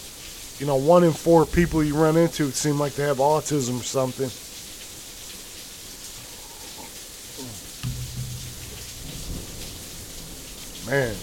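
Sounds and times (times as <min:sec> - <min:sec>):
heavy rain pouring steadily: 0:00.0 - 0:11.2
speech: 0:00.6 - 0:04.4, 0:10.9 - 0:11.2
deep rumble of rolling thunder: 0:01.4 - 0:02.6, 0:07.8 - 0:11.2.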